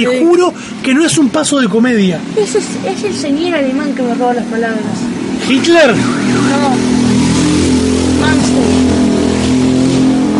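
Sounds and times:
speech: 0:00.0 - 0:07.2, 0:08.2 - 0:09.1
motorcycle engine revving while passing on one wheel: 0:04.6 - 0:10.3.

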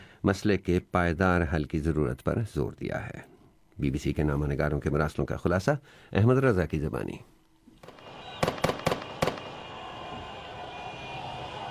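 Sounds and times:
noise: 0:00.0 - 0:11.6
speech: 0:00.2 - 0:07.3
celebratory gunfire in the streets of Gaza after a ceasefire: 0:07.8 - 0:09.6.

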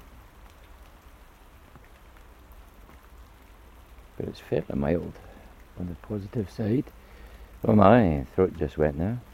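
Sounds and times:
rain pattering on a surface on a windy late-November morning: 0:00.0 - 0:09.3
speech: 0:04.2 - 0:07.0, 0:07.6 - 0:09.3.

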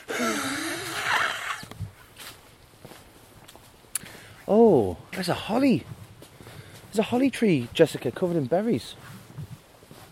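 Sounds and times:
person wheezing while walking outdoors beside a beech hedge: 0:00.0 - 0:01.6
footsteps of a person walking outdoors: 0:01.6 - 0:04.4, 0:05.1 - 0:10.1
speech: 0:04.5 - 0:06.0, 0:06.9 - 0:09.2.

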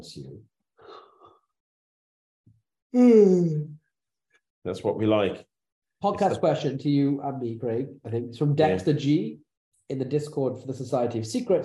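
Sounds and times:
speech: 0:00.0 - 0:00.6, 0:02.9 - 0:03.8, 0:04.6 - 0:11.6
faint breath: 0:00.8 - 0:01.5
person yawning: 0:03.0 - 0:03.7.

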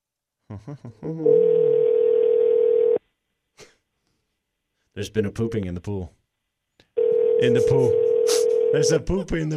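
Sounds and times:
speech: 0:00.5 - 0:02.2, 0:05.0 - 0:06.2, 0:07.4 - 0:09.5
steady electronic phone tone: 0:01.2 - 0:03.0, 0:07.0 - 0:08.9.

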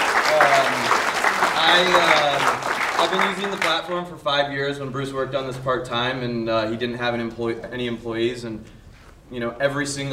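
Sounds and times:
audience applause at a business gathering: 0:00.0 - 0:03.9
speech: 0:01.7 - 0:02.4, 0:03.0 - 0:10.1.

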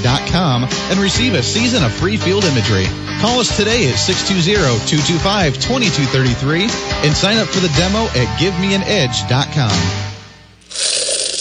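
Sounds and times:
speech: 0:00.2 - 0:10.1
coins dropping and spilling: 0:10.7 - 0:11.3.

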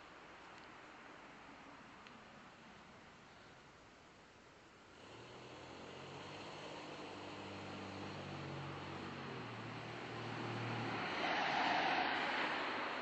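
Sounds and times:
steady rumble of motor traffic: 0:00.0 - 0:13.0
vehicle passing: 0:05.0 - 0:13.0.

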